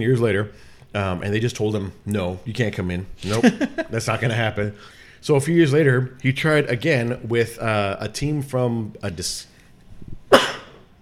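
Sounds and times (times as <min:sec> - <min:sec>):
speech: 0:00.0 - 0:09.5, 0:10.3 - 0:10.6
laughter: 0:03.2 - 0:04.4
sneeze: 0:10.3 - 0:10.9.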